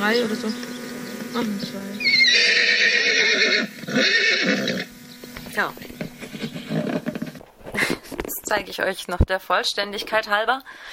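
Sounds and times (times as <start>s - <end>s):
speech: 0.1s - 4.8s, 5.6s - 6.6s, 8.5s - 10.9s
pony whinnying: 2.0s - 5.0s.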